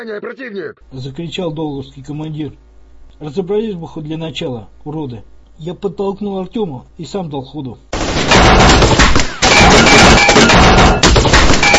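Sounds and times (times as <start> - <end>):
speech: 0.0 - 7.9
heavy gunfire from a group of armed men: 8.0 - 11.7.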